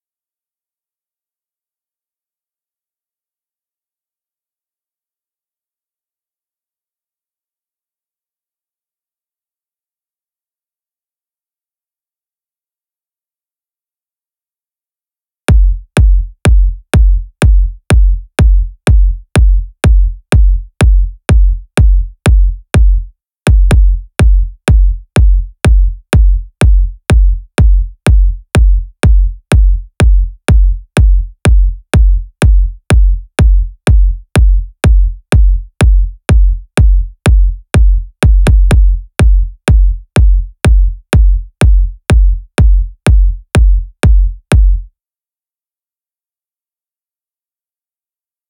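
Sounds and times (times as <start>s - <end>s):
future house kick drum hits: 15.5s - 44.8s.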